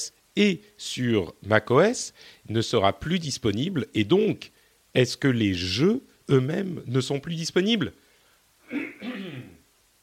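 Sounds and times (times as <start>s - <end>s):
speech: 0.0s - 8.0s
quiet throat-clearing cough: 8.6s - 9.6s.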